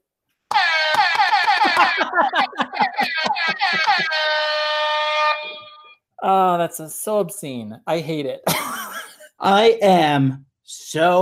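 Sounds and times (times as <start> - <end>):
laughter: 0.5 - 4.6
air horn blast: 3.8 - 6.0
speech: 6.3 - 8.7, 9.4 - 11.1.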